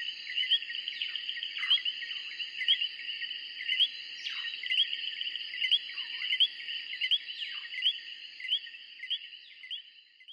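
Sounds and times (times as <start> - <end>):
tree frogs calling in chorus: 0.0 - 10.3.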